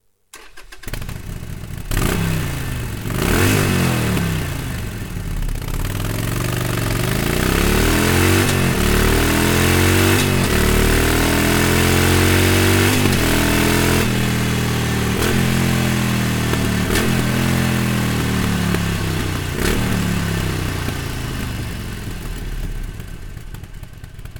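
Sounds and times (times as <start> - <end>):
Akrapovic slip-on motorcycle exhaust on Sportsters: 1.1 - 24.3.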